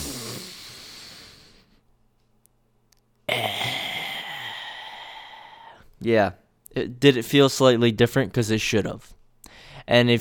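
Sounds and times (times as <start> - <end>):
deep breathing in a hunched posture during a breathing exercise: 0.0 - 1.9, 3.3 - 5.9, 9.4 - 9.9
speech: 6.0 - 9.2, 9.8 - 10.2.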